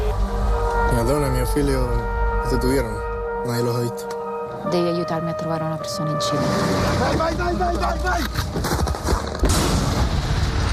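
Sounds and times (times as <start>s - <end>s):
urgent film trailer music: 0.0s - 8.6s
speech: 1.5s - 8.9s
bombs exploding in a film trailer: 8.8s - 10.7s.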